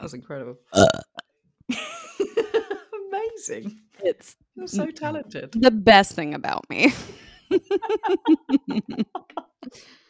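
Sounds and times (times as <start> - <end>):
speech: 0.0 - 1.1, 3.4 - 10.0
person burping deliberately: 0.7 - 1.3
laughter: 6.8 - 9.7.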